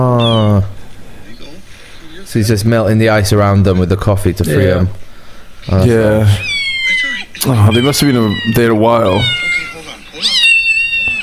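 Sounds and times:
voices: 0:00.0 - 0:11.2
cat meowing: 0:00.2 - 0:00.7, 0:05.8 - 0:11.2
speech: 0:02.3 - 0:09.4.

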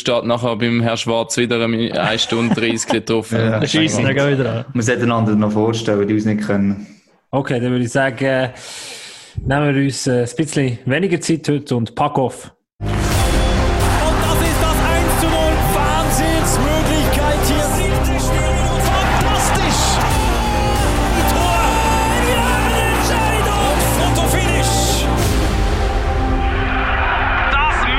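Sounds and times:
speech: 0:00.0 - 0:12.9
laughter: 0:01.7 - 0:04.8, 0:13.9 - 0:24.8
loud busy podcast intro jingle: 0:12.8 - 0:27.8.

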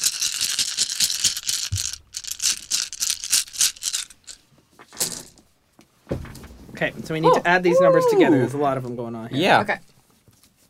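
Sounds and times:
big handful of dice rattling and clattering: 0:00.0 - 0:04.4
speech: 0:06.8 - 0:09.9.

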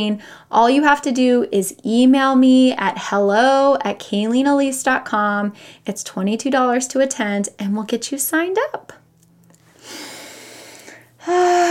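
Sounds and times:
speech: 0:00.0 - 0:09.0, 0:11.2 - 0:11.6
deep breaths: 0:05.6 - 0:05.8, 0:09.7 - 0:11.6.

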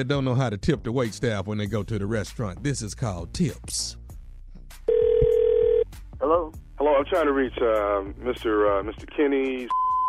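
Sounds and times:
speech: 0:00.0 - 0:04.0, 0:07.0 - 0:09.8
telephone ringing as a prank call is placed: 0:04.9 - 0:05.8.

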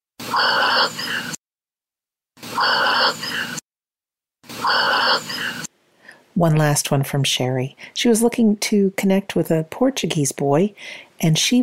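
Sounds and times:
dog breathing heavily: 0:00.2 - 0:01.4, 0:02.4 - 0:03.6, 0:04.5 - 0:05.7
speech: 0:00.4 - 0:01.4, 0:06.4 - 0:11.6.

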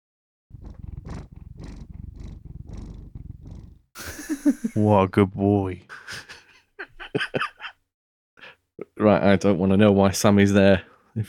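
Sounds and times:
cat purring: 0:00.5 - 0:03.9
laughter: 0:04.0 - 0:04.9, 0:05.9 - 0:07.8
speech: 0:04.4 - 0:06.3, 0:07.1 - 0:07.5, 0:09.0 - 0:11.2.

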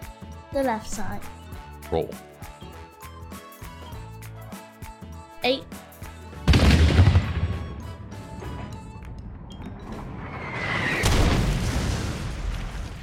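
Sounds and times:
speech: 0:00.5 - 0:02.3, 0:05.4 - 0:05.8
booming explosion with rumbling decay: 0:06.5 - 0:08.3, 0:10.5 - 0:13.0.

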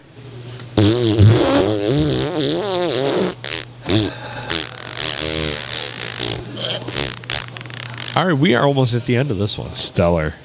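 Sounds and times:
fart blown into microphone: 0:00.8 - 0:08.3
speech: 0:01.8 - 0:02.2, 0:08.2 - 0:10.4.

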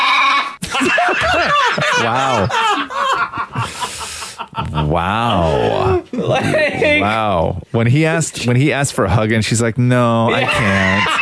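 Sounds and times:
sheep bleating: 0:00.0 - 0:00.6
laughter: 0:00.6 - 0:07.0, 0:10.3 - 0:11.2
speech: 0:02.0 - 0:02.8, 0:04.8 - 0:11.2.

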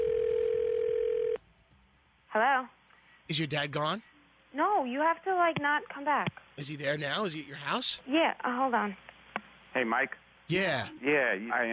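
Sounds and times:
electronic telephone ringing tone as a call connects: 0:00.0 - 0:01.4
speech: 0:02.3 - 0:09.1, 0:09.8 - 0:11.7.

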